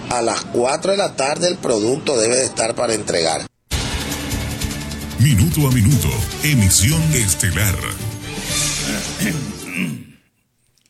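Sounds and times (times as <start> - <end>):
speech: 0.1 - 3.5, 5.2 - 10.0
person clearing throat with a rough cough: 8.8 - 10.3.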